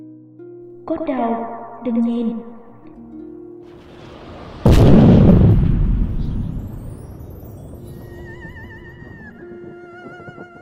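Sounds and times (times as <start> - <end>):
speech: 0.9 - 2.6
single huge explosion with a sharp crack and low rumble: 3.8 - 8.2.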